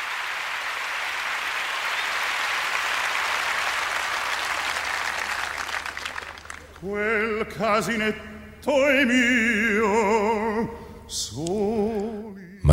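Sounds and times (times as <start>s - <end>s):
audience applause at an opera performance: 0.0s - 6.9s
speech: 6.8s - 12.7s.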